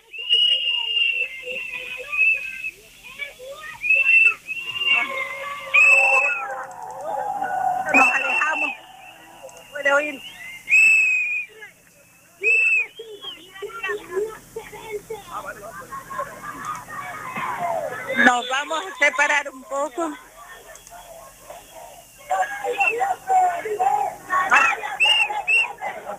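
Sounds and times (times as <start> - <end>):
protest crowd whistling: 0.0 - 2.8, 3.7 - 11.6, 12.4 - 13.7, 20.6 - 26.0
murmur of voices: 0.0 - 26.1.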